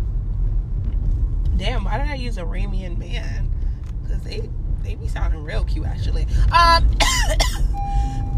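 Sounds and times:
faint steady hum: 0:00.8 - 0:08.3
speech: 0:01.6 - 0:08.2
harsh coughing: 0:07.0 - 0:07.7.

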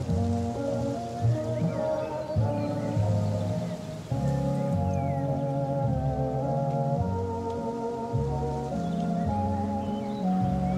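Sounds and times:
muffled bass-heavy music through an open cabin door: 0:00.0 - 0:10.7
faint bird chirps: 0:00.5 - 0:06.0, 0:08.0 - 0:10.7.

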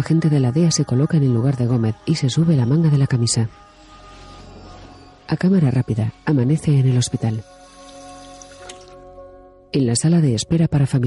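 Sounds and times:
speech: 0:00.0 - 0:03.7, 0:05.3 - 0:07.6, 0:09.7 - 0:11.0
water running from a drinking fountain in a hospital family waiting room: 0:07.1 - 0:09.1
splash of a man washing his face with water: 0:07.5 - 0:09.1.

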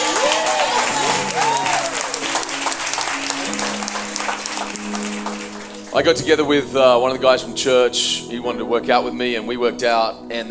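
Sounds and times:
faint voices cheering: 0:00.0 - 0:02.4
audience applause: 0:00.0 - 0:06.2
speech: 0:06.0 - 0:10.5.

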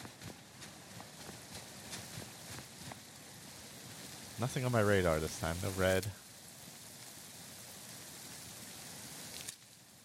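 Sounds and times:
rushing waterfall: 0:00.0 - 0:06.3
speech: 0:04.4 - 0:06.2.

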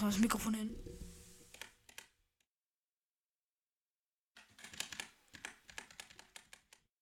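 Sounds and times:
speech: 0:00.0 - 0:01.2
typing on a new computer keyboard in game mode: 0:04.4 - 0:06.9.

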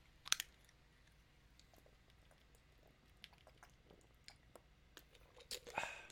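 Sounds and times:
sipping: 0:01.6 - 0:06.1
person gulping water from a bottle: 0:01.7 - 0:06.1.

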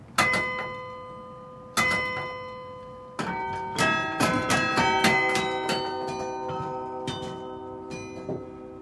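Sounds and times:
carillon playing keys clattering: 0:00.1 - 0:08.8
large tuned carillon bell struck: 0:00.2 - 0:08.8.

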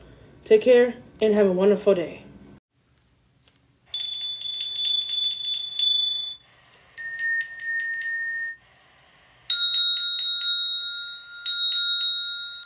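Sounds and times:
speech: 0:00.5 - 0:02.3
hand bell ringing: 0:03.9 - 0:06.4, 0:07.0 - 0:08.6, 0:09.5 - 0:12.6.

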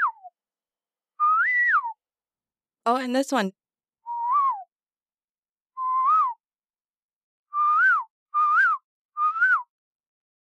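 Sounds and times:
whistled bird call: 0:00.0 - 0:00.3, 0:01.2 - 0:02.0, 0:04.1 - 0:04.7, 0:05.8 - 0:06.4, 0:07.5 - 0:09.7
speech: 0:02.9 - 0:03.6.

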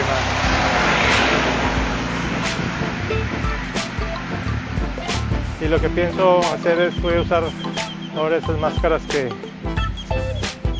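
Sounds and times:
broad wind-like noise: 0:00.0 - 0:06.0
tractor engine rumble with deep low throb: 0:00.0 - 0:10.7
speech: 0:05.7 - 0:09.5.

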